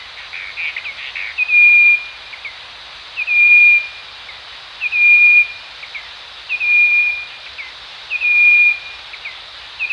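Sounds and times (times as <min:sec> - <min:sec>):
steady hiss: 0:00.0 - 0:09.9
Striped wren-babbler whistle call in Danum: 0:03.2 - 0:03.9, 0:04.8 - 0:05.6, 0:06.5 - 0:07.4, 0:08.1 - 0:09.0.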